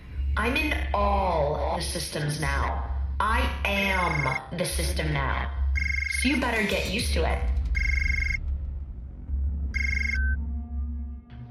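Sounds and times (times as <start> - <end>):
steady low hum: 0.0 - 11.4
speech: 0.4 - 7.8
telephone ringing: 4.0 - 4.4, 5.8 - 6.2, 7.8 - 8.4, 9.8 - 10.4.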